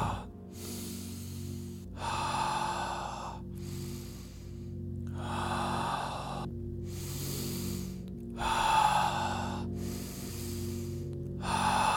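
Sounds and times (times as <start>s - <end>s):
deep breaths in and out during a guided breathing exercise: 0.0s - 11.9s.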